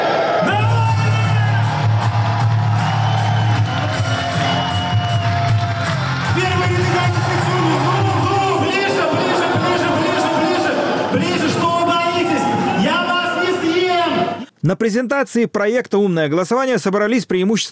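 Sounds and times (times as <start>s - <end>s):
large audience clapping and cheering: 0.1s - 13.5s
whoops and shouting voices: 0.1s - 14.4s
speech: 14.7s - 17.6s.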